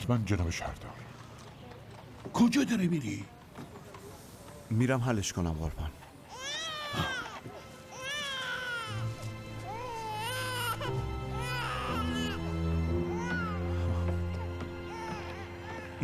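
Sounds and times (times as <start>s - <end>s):
speech: 0.1s - 1.0s, 2.3s - 3.4s, 4.7s - 6.0s, 6.9s - 7.6s
baby crying: 6.3s - 16.0s.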